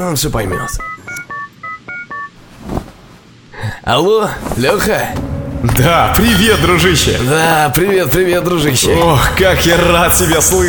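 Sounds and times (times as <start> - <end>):
speech: 0.0 - 1.2, 3.9 - 10.6
touch-tone telephone dialing as a number is entered: 0.5 - 2.4.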